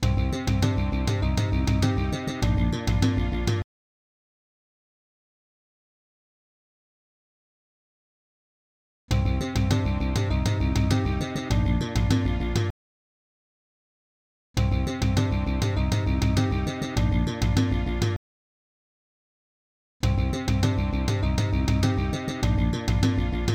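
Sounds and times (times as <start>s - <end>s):
soundcard test intro: 0.0s - 3.6s, 9.2s - 12.7s, 14.7s - 18.2s, 20.0s - 23.5s.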